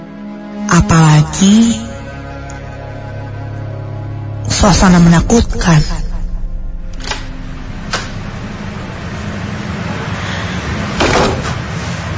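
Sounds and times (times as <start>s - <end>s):
steady hum: 0.0s - 12.1s
speech: 0.7s - 1.9s, 4.6s - 6.0s
heavy toilet door being pushed open: 6.7s - 12.1s.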